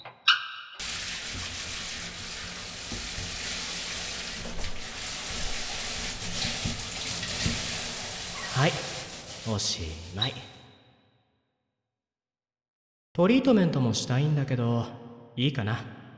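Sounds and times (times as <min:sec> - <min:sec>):
running water rinsing shampoo out of hair: 0:00.8 - 0:10.6
speech: 0:08.6 - 0:08.9, 0:09.5 - 0:10.5, 0:13.2 - 0:16.0.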